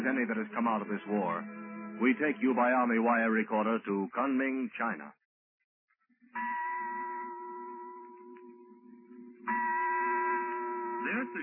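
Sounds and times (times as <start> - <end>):
speech: 0.1 - 5.2, 6.3 - 6.6, 11.0 - 11.4
large chapel bell ringing: 6.4 - 11.4.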